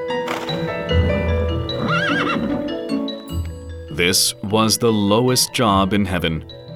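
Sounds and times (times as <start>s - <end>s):
horse neighing: 0.3s - 2.9s
speech: 4.0s - 6.6s.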